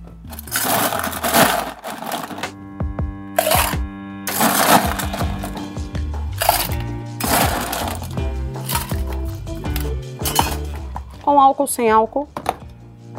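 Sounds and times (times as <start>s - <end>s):
ice cubes clattering into a metal cocktail shaker while a gin cocktail is made: 0.3s - 2.5s, 3.4s - 5.7s, 6.4s - 10.7s
speech: 11.4s - 12.4s.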